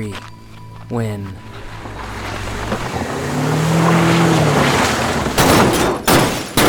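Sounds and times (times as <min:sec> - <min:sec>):
speech: 0:00.0 - 0:00.3, 0:00.9 - 0:01.5
car engine roaring: 0:00.4 - 0:06.6
car crashing through the front gate of a depot: 0:01.4 - 0:06.6.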